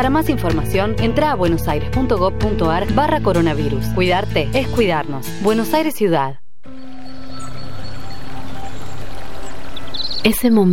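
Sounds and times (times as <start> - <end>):
speech: 0.0 - 6.4, 10.2 - 10.7
water flowing in a stream in Córdoba province in summer: 7.0 - 10.3.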